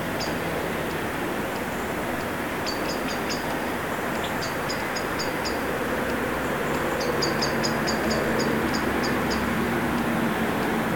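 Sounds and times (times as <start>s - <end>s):
loud constant rushing noise: 0.0s - 10.9s
common blackbird thin high metallic ticking calls: 0.1s - 5.6s, 6.7s - 9.5s.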